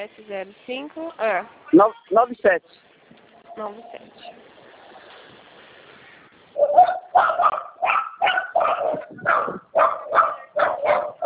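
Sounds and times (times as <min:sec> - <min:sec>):
speech: 0:00.0 - 0:02.9, 0:03.6 - 0:04.4, 0:06.6 - 0:07.7
dogs barking while walked along a street: 0:06.6 - 0:11.2.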